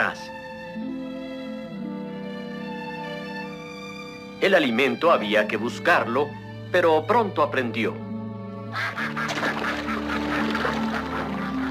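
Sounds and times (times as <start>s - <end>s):
sustained tonal background: 0.0s - 11.7s
speech: 4.4s - 8.0s
duck quacking: 8.7s - 11.7s.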